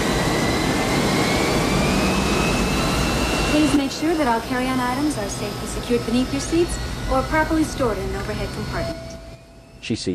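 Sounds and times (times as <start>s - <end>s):
jet plane engines roaring while taxiing onto runway: 0.0s - 10.1s
speech: 4.2s - 9.2s, 9.8s - 10.1s.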